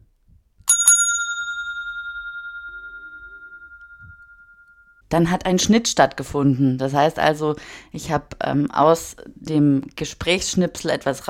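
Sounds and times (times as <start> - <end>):
bright bell ding with metallic ringing tone: 0.7 - 5.0
speech: 5.1 - 11.2.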